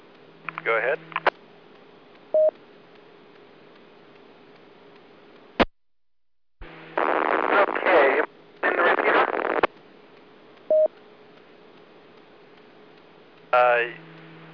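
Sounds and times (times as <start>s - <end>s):
weak hissy ham radio transmission through a repeater: 0.5s - 1.3s, 6.6s - 9.7s, 13.6s - 14.0s
speech: 0.6s - 1.2s.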